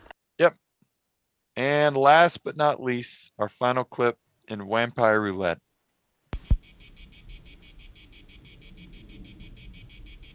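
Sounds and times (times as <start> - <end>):
speech: 0.4 - 0.6, 1.6 - 5.7
brief sharp click: 6.4 - 6.7
crickets chirping: 6.6 - 10.3.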